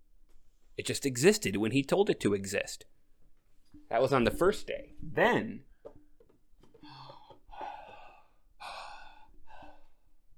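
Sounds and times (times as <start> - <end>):
speech: 0.8 - 3.0, 3.9 - 5.7
person breathing in and out: 6.8 - 10.3.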